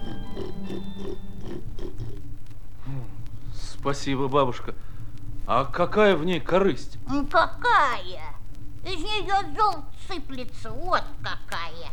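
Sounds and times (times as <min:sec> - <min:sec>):
pig grunting and oinking: 0:00.0 - 0:02.2
speech: 0:03.8 - 0:04.9, 0:05.5 - 0:11.9.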